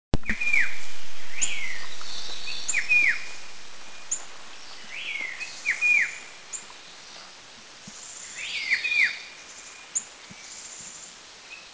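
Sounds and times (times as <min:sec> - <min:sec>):
Black-headed Shrike Babbler calling in Eaglenest India: 0:00.2 - 0:09.2.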